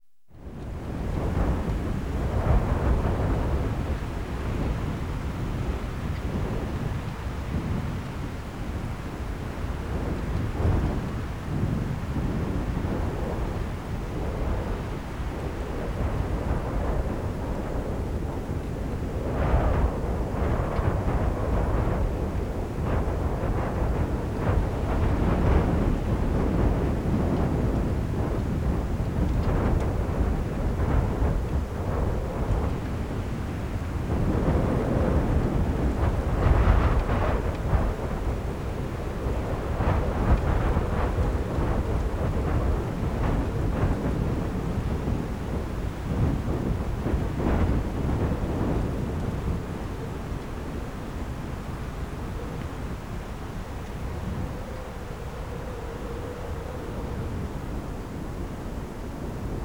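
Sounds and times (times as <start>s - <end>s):
storm in the mountains: 0.6s - 59.6s.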